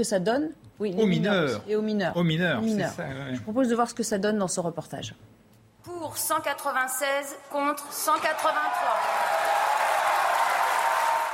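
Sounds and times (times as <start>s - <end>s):
speech: 0.0s - 9.5s
applause from deputies in a parliament chamber: 7.9s - 11.3s.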